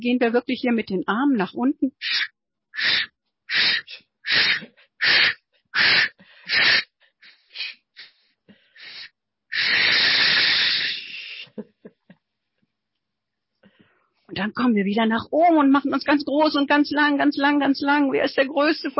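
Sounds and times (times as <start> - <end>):
speech: 0.0 - 6.9, 14.3 - 18.9
voice imitating a steam locomotive with breathy puffs: 2.8 - 11.5.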